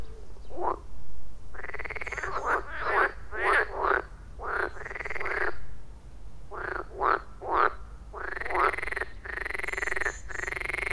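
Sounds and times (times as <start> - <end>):
chorus of frogs with rasping pulsed croaks: 1.6 - 5.6, 6.5 - 10.9.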